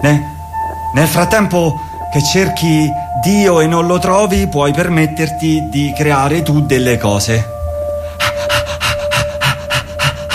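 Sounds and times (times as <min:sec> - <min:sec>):
speech: 0:00.0 - 0:00.3, 0:00.9 - 0:07.6
dog panting: 0:08.0 - 0:10.3.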